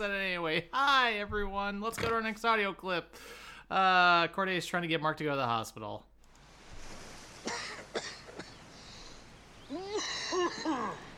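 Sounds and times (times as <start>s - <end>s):
speech: 0.0s - 6.1s, 10.4s - 11.1s
harsh coughs: 7.4s - 8.6s.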